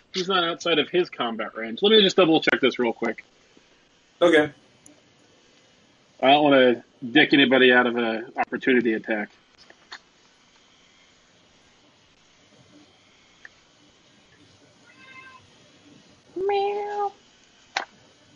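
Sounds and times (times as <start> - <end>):
speech: 0.2 - 3.4, 4.2 - 4.6, 6.2 - 9.4
kitten meowing: 14.9 - 15.4
sharp clicks: 17.4 - 18.0.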